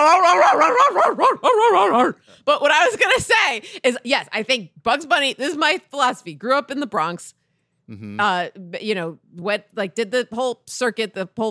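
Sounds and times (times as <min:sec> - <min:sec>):
person imitating a dog with yelping barks: 0:00.0 - 0:02.2, 0:07.9 - 0:08.2
speech: 0:00.1 - 0:11.4.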